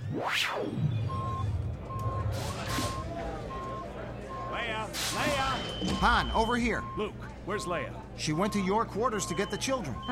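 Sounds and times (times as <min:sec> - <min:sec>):
speech: 0:00.2 - 0:01.0, 0:06.0 - 0:10.0
electronic alarm beeping: 0:00.8 - 0:07.6, 0:08.2 - 0:10.0.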